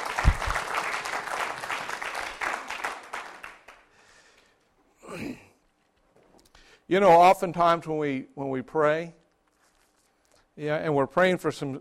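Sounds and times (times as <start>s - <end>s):
congregation clapping hands: 0.0s - 4.3s
speech: 6.9s - 9.2s, 10.6s - 11.8s.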